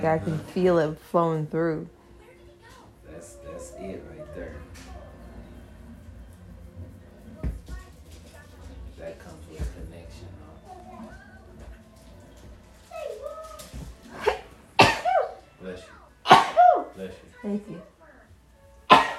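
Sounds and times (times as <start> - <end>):
speech: 0.0 - 2.0, 3.2 - 4.6, 17.0 - 17.9
low talk: 1.8 - 19.1
person sneezing: 16.3 - 16.8.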